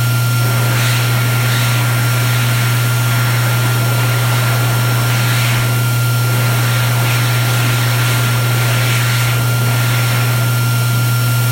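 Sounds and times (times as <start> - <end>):
bathroom dryer running: 0.0 - 11.5.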